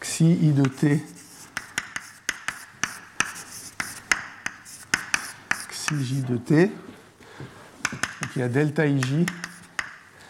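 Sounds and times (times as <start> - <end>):
speech: 0.2 - 1.2, 5.9 - 7.5, 8.4 - 9.4
handwriting scratches writing an equation: 0.9 - 6.3, 9.0 - 10.0.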